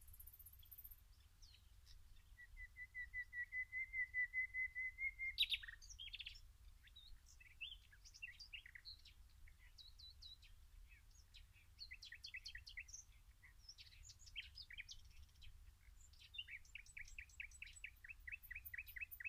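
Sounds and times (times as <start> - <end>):
Common nightingale Luscinia megarhynchos singing: 0.0 - 19.2.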